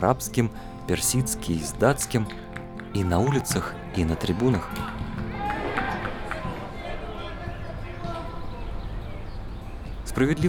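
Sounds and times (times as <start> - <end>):
speech: 0.0 - 5.0, 10.2 - 10.4
quick running footsteps of football players: 1.6 - 8.8
stadium crowd noise: 2.9 - 10.4.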